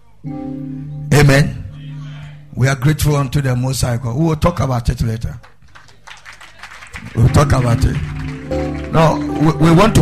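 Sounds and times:
speech: 0.2 - 1.6, 2.6 - 5.5, 7.2 - 9.9
church audience clapping for a bishop: 5.4 - 9.9.

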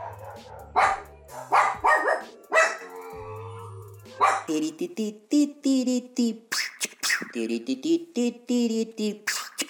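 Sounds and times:
dogs barking at water delivery man: 0.0 - 3.2, 4.1 - 4.5
speech: 4.5 - 6.7, 7.4 - 9.3.

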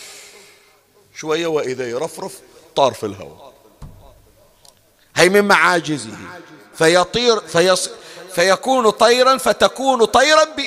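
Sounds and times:
voice imitating breath blown into a clay bird: 0.0 - 0.7
speech: 1.2 - 3.5, 5.2 - 10.6.

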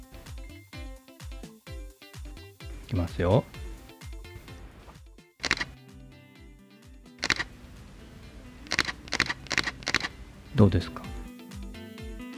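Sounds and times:
speech: 2.9 - 3.6, 10.6 - 11.1
mirrorless camera mechanical shutter clicks: 5.4 - 5.8, 7.2 - 7.6, 8.6 - 10.2.

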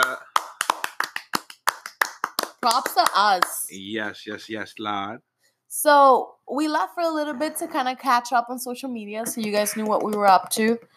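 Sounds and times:
hands clapping as a round of applause: 0.0 - 3.7, 9.3 - 10.8
speech: 2.6 - 10.9.

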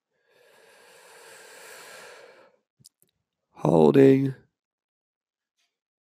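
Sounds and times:
long steady breath in through the nose: 0.2 - 2.6
speech: 3.6 - 4.4.

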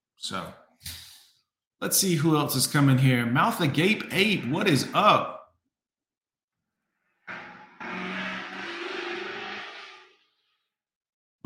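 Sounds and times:
speech: 0.2 - 0.9, 1.8 - 5.4
car engine revving hard in low gear while driving past a house: 7.3 - 10.1.

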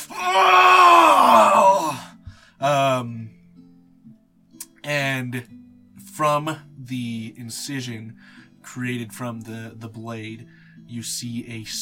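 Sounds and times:
performer giving a strained cry: 0.0 - 2.2
performer voicing a character stabbed in the chest screaming in agony: 0.0 - 2.2
speech: 6.4 - 11.8.

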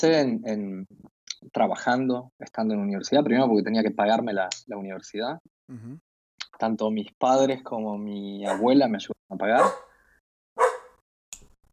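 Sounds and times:
speech: 0.0 - 9.9
small dog barking: 8.4 - 8.7, 9.6 - 9.9, 10.6 - 11.0.

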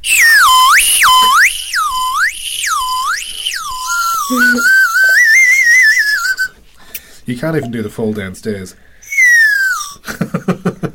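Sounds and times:
Whistle Pop candy whistle blown: 0.0 - 6.6, 9.0 - 10.0
speech: 7.4 - 9.0.

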